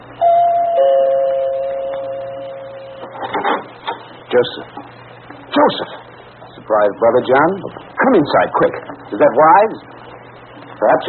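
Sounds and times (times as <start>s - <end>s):
two-tone ding-dong doorbell ringing: 0.2s - 3.2s
speech: 4.3s - 5.0s, 5.6s - 5.9s, 6.7s - 10.0s, 10.8s - 11.0s.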